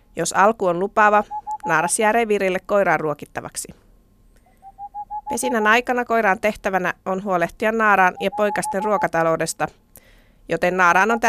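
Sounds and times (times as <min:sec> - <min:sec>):
speech: 0:00.2 - 0:03.8, 0:05.3 - 0:09.8, 0:10.4 - 0:11.2
Tengmalm's owl hoot series: 0:01.2 - 0:01.8, 0:04.5 - 0:05.8, 0:08.1 - 0:09.1.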